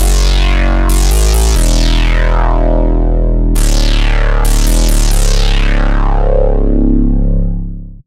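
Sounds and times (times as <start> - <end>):
old school synth bass made with Serum 2: 0.0 - 8.0.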